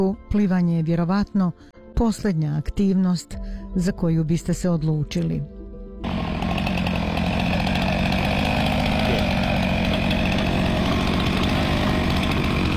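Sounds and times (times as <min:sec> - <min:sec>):
speech: 0:00.0 - 0:06.2
chainsaws cutting a swimming pool into Antarctic ice at a research station: 0:06.0 - 0:12.7.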